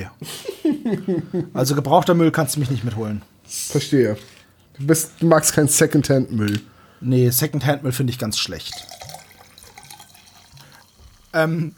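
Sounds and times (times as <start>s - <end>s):
speech: 0.0s - 9.0s, 11.3s - 11.7s
laughter: 0.2s - 1.6s
liquid pouring into a glass: 8.6s - 11.4s.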